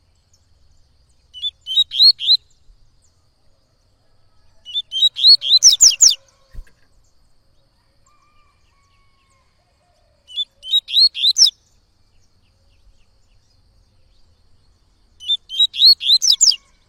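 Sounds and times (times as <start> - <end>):
Yellow-bellied Seedeater singing tui-tui song: 1.0 - 2.6, 4.7 - 6.6, 10.3 - 11.7, 15.2 - 16.8.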